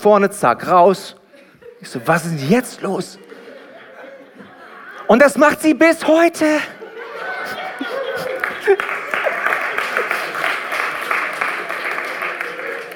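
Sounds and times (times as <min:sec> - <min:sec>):
speech: 0:00.0 - 0:01.2, 0:01.8 - 0:03.3, 0:05.1 - 0:06.8, 0:08.2 - 0:09.0
audience laughter: 0:01.3 - 0:01.9, 0:02.8 - 0:05.1, 0:06.6 - 0:10.3
audience applauding: 0:07.5 - 0:12.9.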